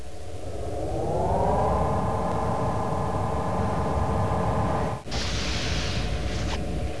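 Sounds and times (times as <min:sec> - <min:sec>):
turbolift: 0:00.0 - 0:06.9.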